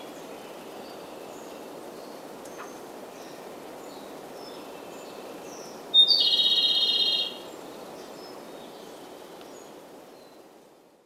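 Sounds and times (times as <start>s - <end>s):
Japanese robin singing loud high trilled phrases: 6.0s - 7.4s.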